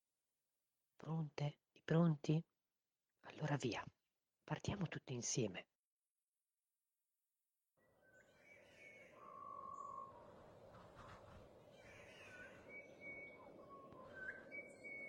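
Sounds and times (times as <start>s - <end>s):
speech: 1.0s - 2.5s, 3.2s - 5.7s
birds chirping and whistling in jungle tree branches: 8.1s - 15.0s
dense steady jungle hum: 8.2s - 15.0s.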